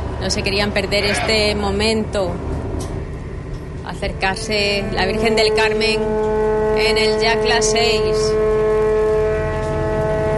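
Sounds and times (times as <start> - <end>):
boat horns blaring outdoors: 0.0 - 10.3
speech: 0.2 - 2.9, 3.9 - 8.6.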